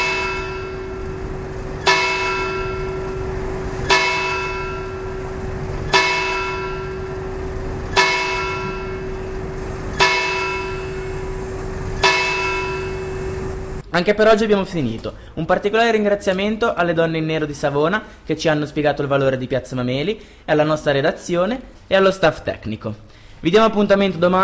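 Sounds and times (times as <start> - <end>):
church bells tolling: 0.0 - 13.8
constant low hum: 0.0 - 15.4
speech: 14.0 - 24.4.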